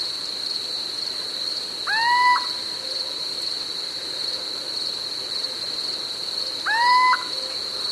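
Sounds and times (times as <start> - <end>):
little owl giving short rising mewing calls: 1.9 - 2.6, 6.6 - 7.4.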